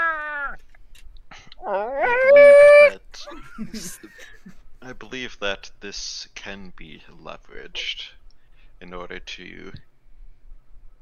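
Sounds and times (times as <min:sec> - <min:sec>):
dog whining: 0:00.0 - 0:00.6, 0:01.6 - 0:03.0
speech: 0:03.6 - 0:08.2, 0:08.8 - 0:09.9.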